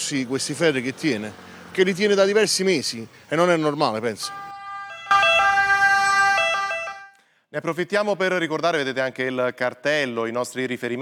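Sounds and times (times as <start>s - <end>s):
ambulance siren wailing: 0.0s - 7.1s
speech: 0.1s - 4.4s, 7.5s - 11.0s.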